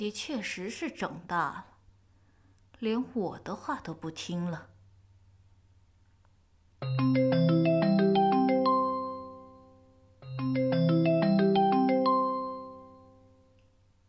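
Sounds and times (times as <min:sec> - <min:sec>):
speech: 0:00.0 - 0:01.7, 0:02.8 - 0:04.7
phone ringtone playing a short rising melody: 0:06.8 - 0:13.5.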